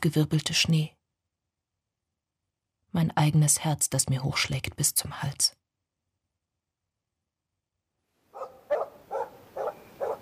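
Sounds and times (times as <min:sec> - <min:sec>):
speech: 0:00.0 - 0:01.0, 0:02.9 - 0:05.6
dog barking in snow: 0:08.3 - 0:10.1.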